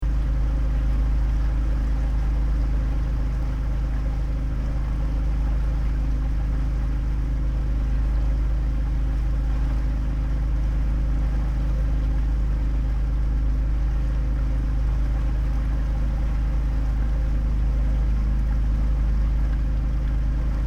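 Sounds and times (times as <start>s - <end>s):
water heard from barge cabin: 0.0s - 20.6s
barge engine heard from cabin with windows semi closed: 13.7s - 20.6s.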